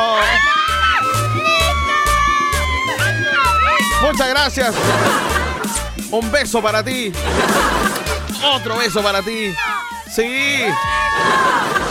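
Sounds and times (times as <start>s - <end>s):
large crowd shouting and cheering: 0.0s - 11.8s
steady rhythmic low thumping beat: 0.9s - 11.2s
laughter: 1.1s - 6.1s, 6.7s - 11.8s
speech: 4.4s - 5.3s, 6.1s - 11.8s.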